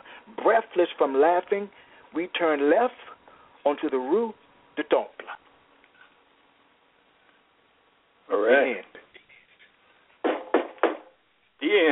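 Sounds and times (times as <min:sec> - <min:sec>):
speech: 0:00.5 - 0:05.2, 0:08.3 - 0:08.9, 0:11.6 - 0:11.8
firm knocks: 0:10.2 - 0:11.2.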